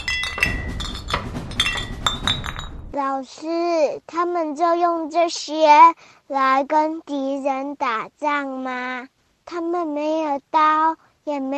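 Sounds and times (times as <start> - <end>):
glass bottles with torches hidden inside clinking: 0.0 - 2.8
low rumbling background: 0.0 - 3.0
speech: 3.0 - 11.5.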